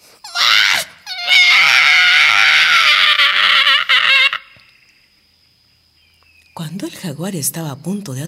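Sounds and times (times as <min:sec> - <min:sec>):
howler monkey screaming in terror: 0:00.2 - 0:04.7
speech: 0:06.6 - 0:08.2.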